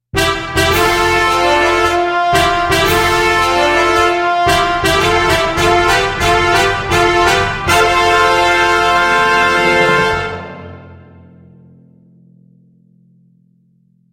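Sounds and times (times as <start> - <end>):
fanfare at a solemn award ceremony: 0.1 - 11.6
solemn award ceremony sounds: 0.2 - 11.2.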